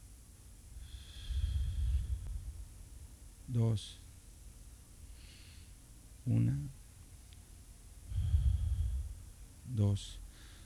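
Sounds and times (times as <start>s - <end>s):
slow deep breath during guided meditation: 0.8s - 2.8s, 5.1s - 5.8s, 8.0s - 9.4s, 10.3s - 10.6s
speech: 3.5s - 4.0s, 6.3s - 6.8s, 10.0s - 10.2s.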